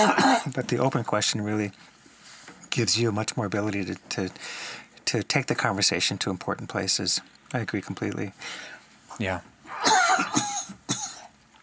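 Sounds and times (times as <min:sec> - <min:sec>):
person coughing harshly: 0:00.0 - 0:00.5, 0:09.8 - 0:11.3
speech: 0:00.0 - 0:02.0, 0:02.8 - 0:10.5.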